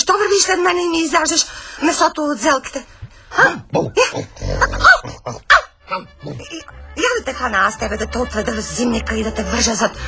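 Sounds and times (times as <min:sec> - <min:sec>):
speech: 0:00.4 - 0:10.0
dog barking in short sharp yips: 0:04.8 - 0:06.4.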